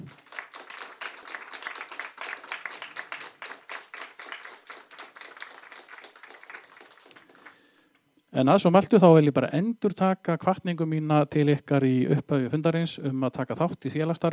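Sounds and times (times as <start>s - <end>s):
audience applauding at an association meeting: 0.0s - 7.8s
speech: 8.4s - 14.3s.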